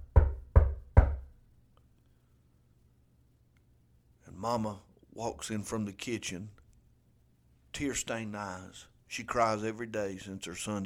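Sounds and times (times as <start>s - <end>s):
firm knocking on a wooden door: 0.0s - 1.3s
speech: 4.4s - 6.6s, 7.7s - 10.8s.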